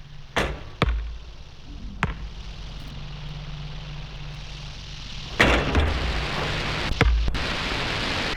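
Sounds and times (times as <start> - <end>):
steady hiss of noise: 0.0 - 8.3
basketball bouncing outside: 0.4 - 4.4, 5.3 - 7.4.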